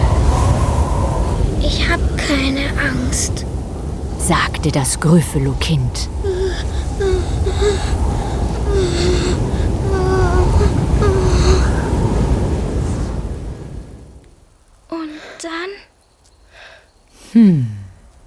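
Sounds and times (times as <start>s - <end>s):
strong howling wind in a snowstorm: 0.0s - 14.9s
speech: 2.3s - 3.6s, 4.3s - 6.8s, 7.6s - 8.1s, 17.3s - 17.8s
brief vocal sounds: 17.1s - 18.0s.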